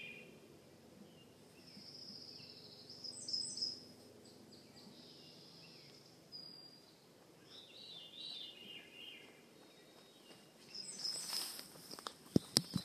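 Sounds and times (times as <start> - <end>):
faint veery song with descending swirling phrase in Juneau, Alaska: 0.0 - 0.4, 1.0 - 12.8
low background hiss: 0.0 - 12.8.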